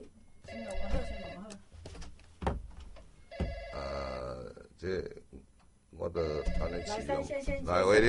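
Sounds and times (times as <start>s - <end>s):
faint noise: 0.0s - 8.0s
telephone ringing: 0.4s - 1.5s, 3.2s - 4.0s, 6.2s - 7.3s
speech: 4.8s - 5.2s, 6.0s - 8.0s.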